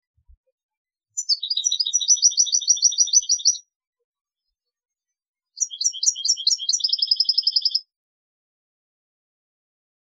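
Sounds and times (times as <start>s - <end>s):
European goldfinch twittering song: 1.2s - 3.7s, 5.6s - 7.9s.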